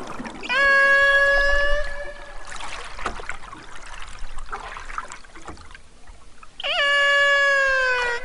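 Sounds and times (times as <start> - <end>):
male transient killer whale wailing call: 0.0 - 3.0, 6.6 - 8.2
faint watery underwater swishing and trickling: 0.0 - 8.2.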